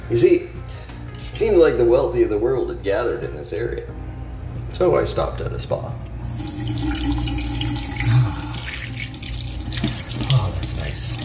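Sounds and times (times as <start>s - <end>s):
speech: 0.1s - 4.0s, 4.7s - 7.3s, 10.4s - 11.2s
water running from a tap splashing into a basin: 6.2s - 11.2s.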